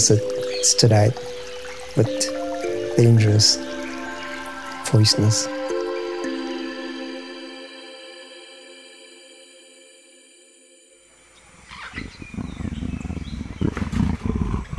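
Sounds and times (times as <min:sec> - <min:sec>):
speech: 0:00.0 - 0:01.4, 0:02.0 - 0:02.4, 0:03.0 - 0:03.8, 0:04.9 - 0:05.6
high steady tonal buzzing: 0:00.0 - 0:12.8
jaguar roaring in a jungle in Guyana: 0:11.8 - 0:14.7.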